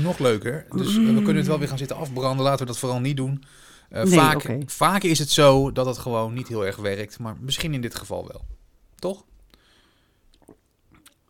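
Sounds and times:
speech: 0.0s - 9.3s
person sipping a drink: 0.7s - 1.7s, 10.3s - 11.2s.

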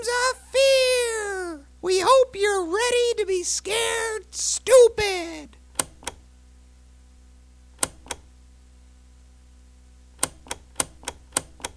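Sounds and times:
faint steady hum: 0.0s - 11.7s
speech: 2.6s - 5.6s
tape machine button clicks: 5.7s - 6.2s, 7.8s - 8.3s, 10.2s - 11.7s.

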